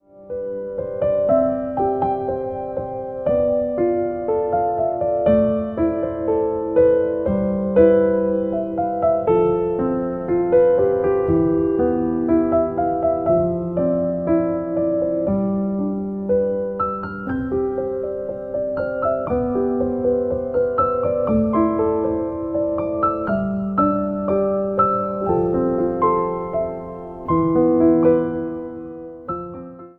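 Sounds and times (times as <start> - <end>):
piano ringtone: 0.1 - 29.9.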